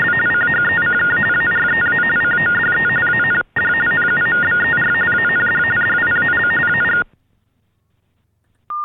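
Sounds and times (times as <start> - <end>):
warbling telephone signaling tones for the hearing impaired over a phone line: 0.0 - 7.1.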